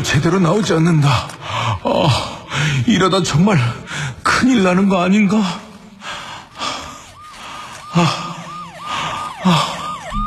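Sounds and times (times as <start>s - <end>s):
speech: 0.1s - 5.6s, 7.9s - 8.2s, 9.4s - 9.7s
heavy labored gasping breaths: 1.3s - 2.9s, 3.6s - 4.3s, 5.9s - 10.1s
distant ambulance siren: 6.0s - 10.2s.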